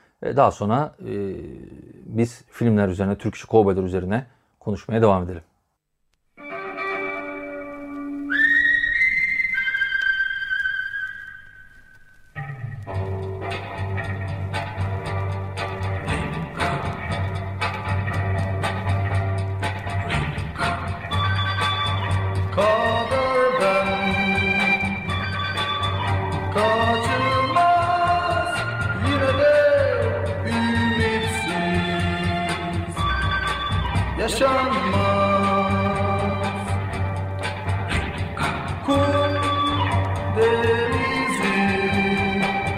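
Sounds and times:
speech: 0.2s - 5.5s
lone whistled melody over soft chords: 7.1s - 12.3s, 21.0s - 35.1s, 38.9s - 42.7s
full band with heavy bass, drums and bright melodic lines: 13.0s - 42.7s.

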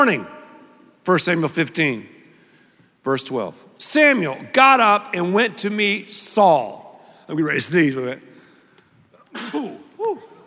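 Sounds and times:
speech: 0.0s - 0.4s, 1.0s - 2.2s, 3.0s - 8.3s, 9.3s - 10.3s
person sneezing: 9.3s - 10.4s.

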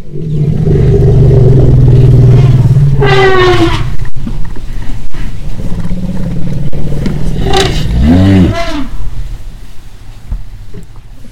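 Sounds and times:
bull elephant rumble: 0.0s - 10.3s
female elephant trumpeting: 0.6s - 4.1s, 5.6s - 9.1s.

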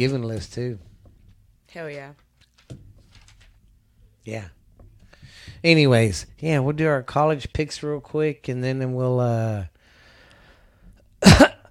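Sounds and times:
speech: 0.0s - 0.9s, 1.7s - 2.8s, 4.2s - 4.6s, 5.3s - 9.7s, 11.2s - 11.5s
person coughing into a microphone: 11.2s - 11.7s.

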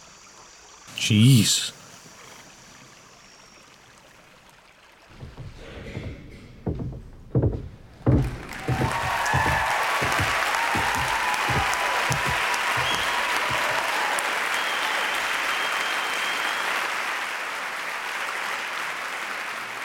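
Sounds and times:
speech: 1.0s - 1.8s
theatre audience applauding: 8.0s - 19.8s.

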